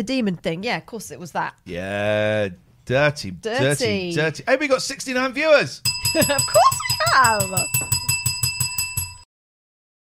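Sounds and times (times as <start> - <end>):
speech: 0.0 - 8.0
bicycle-style bell ringing: 5.9 - 9.3.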